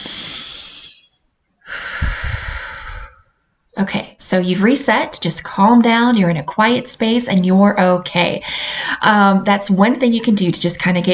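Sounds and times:
deep breath in and out through the mouth: 0:00.0 - 0:03.6, 0:08.4 - 0:09.0
speech: 0:03.8 - 0:11.1.

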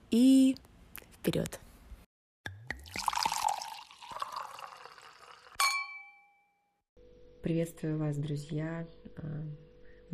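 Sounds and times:
speech: 0:00.1 - 0:01.6, 0:07.5 - 0:10.1
drink pouring into a glass for a toast: 0:02.7 - 0:05.6
bright glass clink: 0:04.2 - 0:06.6.

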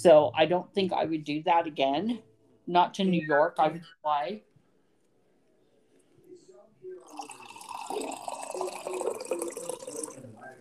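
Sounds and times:
speech: 0:00.0 - 0:04.5
liquid pouring into a glass: 0:07.0 - 0:10.5.

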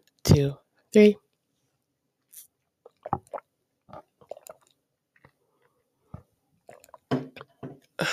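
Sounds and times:
speech: 0:00.3 - 0:01.2
wet sipping and swallowing of ice water from a tumbler: 0:02.3 - 0:07.6.

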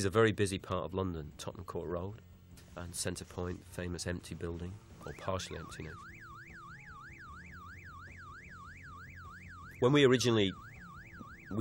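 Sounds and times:
speech: 0:00.0 - 0:06.1, 0:09.8 - 0:10.6
loud alarm wailing with sweeping pitch: 0:05.0 - 0:11.5.

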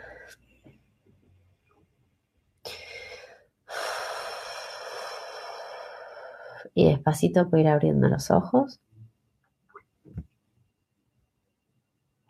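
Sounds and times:
slow deep breath close to the microphone: 0:02.7 - 0:06.7
speech: 0:06.7 - 0:08.8.

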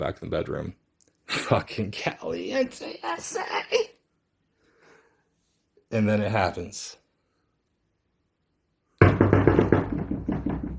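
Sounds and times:
speech: 0:00.0 - 0:04.0, 0:05.9 - 0:07.0
rapid heavy knocking on a door: 0:09.0 - 0:10.7.

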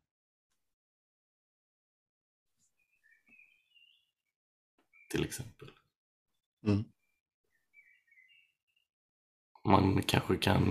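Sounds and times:
birds chirping: 0:02.5 - 0:08.9
speech: 0:05.1 - 0:05.8, 0:06.6 - 0:06.9, 0:09.6 - 0:10.7.

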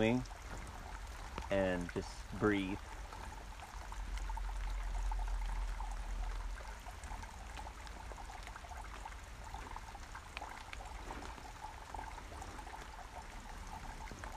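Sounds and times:
speech: 0:00.0 - 0:00.4, 0:01.5 - 0:03.0
stream of running water babbling and splashing: 0:00.0 - 0:14.3.

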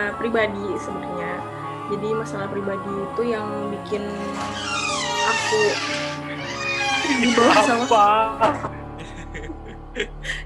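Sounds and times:
speech: 0:00.0 - 0:08.7, 0:10.0 - 0:10.4
door creaking open: 0:04.2 - 0:08.2
laughter: 0:06.9 - 0:10.4.

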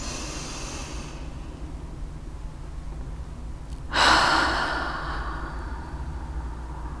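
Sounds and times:
deep breath in and out: 0:00.0 - 0:01.6, 0:03.9 - 0:06.9.

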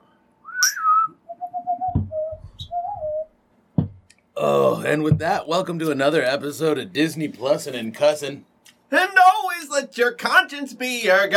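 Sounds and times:
person whistling a short bouncy tune: 0:00.4 - 0:03.3
speech: 0:04.4 - 0:11.3.

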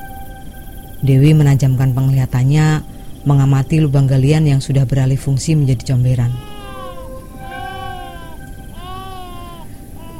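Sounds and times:
low rumbling noise: 0:00.0 - 0:10.1
speech: 0:01.0 - 0:06.5
baby crying: 0:06.2 - 0:10.1.

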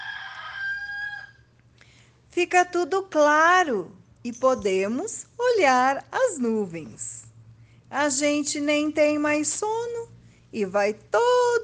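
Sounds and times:
rooster crowing: 0:00.0 - 0:01.5
speech: 0:02.4 - 0:07.2, 0:07.9 - 0:11.6.

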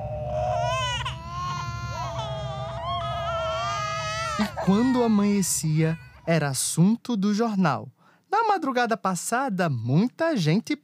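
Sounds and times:
low rumble: 0:00.0 - 0:04.6
frightened young children wailing and sobbing: 0:00.0 - 0:06.4
speech: 0:04.4 - 0:10.8.

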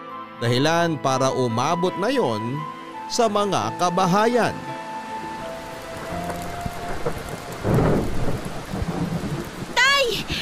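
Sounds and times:
speech: 0:00.4 - 0:04.7
heavy rain from a typhoon: 0:03.2 - 0:10.4
loud rumbling thunder: 0:05.9 - 0:10.4.

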